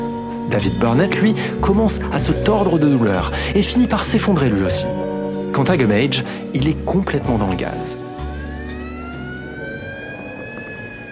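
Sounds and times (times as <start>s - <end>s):
speech: 0.5s - 8.1s
ambulance siren wailing as the ambulance arrives: 6.1s - 11.1s.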